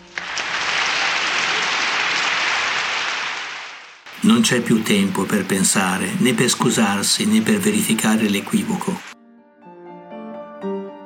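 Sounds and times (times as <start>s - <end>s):
large audience applauding: 0.0s - 5.5s
speech: 4.2s - 9.2s.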